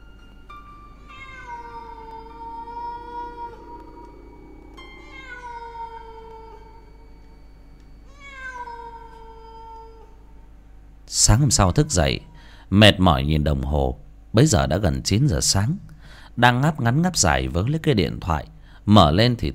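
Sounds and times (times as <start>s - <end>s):
steady low hum: 0.0s - 18.8s
black cat crying in the night: 1.0s - 7.0s, 8.1s - 10.3s
speech: 11.1s - 19.5s.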